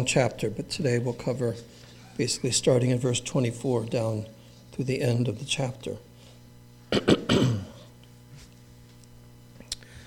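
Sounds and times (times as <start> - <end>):
speech: 0.0 - 6.1
speaker clearing throat after a cough: 6.9 - 7.9.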